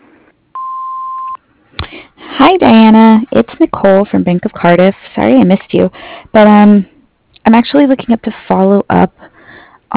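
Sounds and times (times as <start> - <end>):
answering machine beep: 0.6 - 1.4
speech: 2.4 - 9.3.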